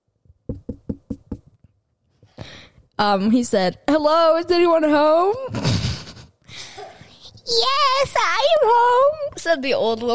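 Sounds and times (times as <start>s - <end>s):
knocking on a door: 0.4s - 1.5s
speech: 3.0s - 5.7s, 7.5s - 10.1s.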